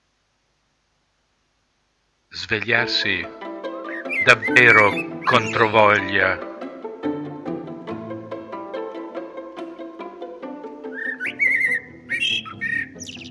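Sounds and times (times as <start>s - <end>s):
speech: 2.4s - 3.5s, 4.2s - 6.5s
blackbirds singing at dawn: 3.8s - 6.4s, 10.9s - 13.2s
soft tonal bird notes: 3.8s - 6.4s, 10.8s - 13.2s.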